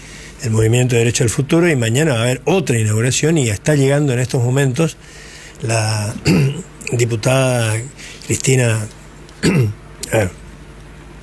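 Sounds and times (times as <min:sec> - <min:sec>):
speech: 0:00.4 - 0:10.4
rough throat-clearing coughs: 0:06.1 - 0:06.9, 0:09.4 - 0:10.4.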